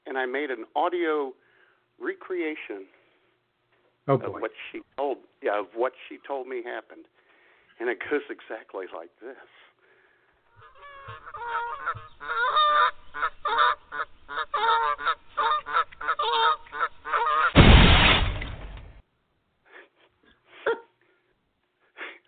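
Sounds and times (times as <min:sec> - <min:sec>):
speech: 0:00.2 - 0:01.4, 0:02.0 - 0:03.0, 0:04.0 - 0:07.2, 0:07.8 - 0:09.6
goose honking: 0:10.5 - 0:17.6
goose crashing into the side-view mirror of a moving car: 0:17.5 - 0:18.9.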